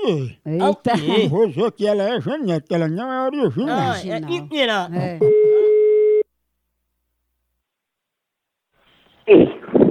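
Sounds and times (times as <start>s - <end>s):
speech: 0.1s - 5.6s, 9.3s - 9.5s
telephone tone while placing a call: 5.3s - 6.2s.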